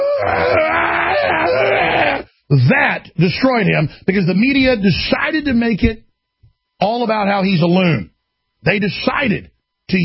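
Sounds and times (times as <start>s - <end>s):
man's hoarse roar-like scream at a political event: 0.0s - 2.3s
speech: 0.2s - 6.0s, 6.8s - 10.0s.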